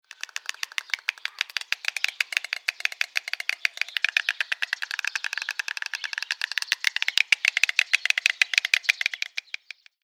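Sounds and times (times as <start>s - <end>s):
White stork Ciconia ciconia bill clattering: 0.0s - 10.0s.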